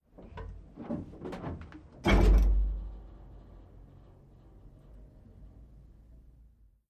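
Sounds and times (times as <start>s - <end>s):
M60 tank interior hatch: 0.2s - 5.4s.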